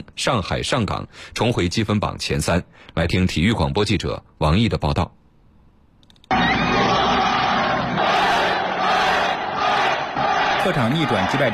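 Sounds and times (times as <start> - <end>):
speech: 0.0 - 5.2, 10.6 - 11.5
football players and travelling fans cheering after away win: 6.3 - 11.5.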